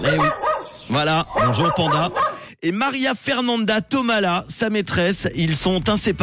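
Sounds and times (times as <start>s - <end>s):
dog giving short yelping barks: 0.0s - 2.5s
speech: 0.1s - 6.2s.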